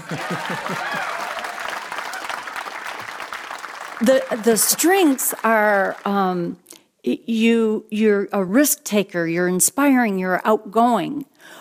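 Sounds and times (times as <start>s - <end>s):
people laughing: 0.0s - 1.6s
crowd applauding: 0.0s - 6.2s
speech: 0.1s - 1.3s, 4.0s - 11.5s.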